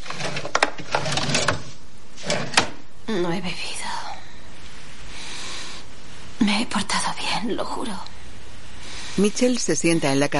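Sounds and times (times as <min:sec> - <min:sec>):
rummaging through bedside table drawers: 0:00.0 - 0:02.7
speech: 0:03.1 - 0:03.8, 0:06.8 - 0:08.2, 0:09.2 - 0:10.3.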